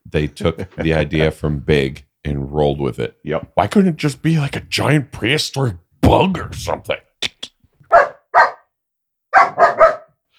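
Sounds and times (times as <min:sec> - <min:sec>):
speech: 0:00.1 - 0:07.0
dog giving high-pitched barks: 0:07.9 - 0:08.7, 0:09.3 - 0:10.2.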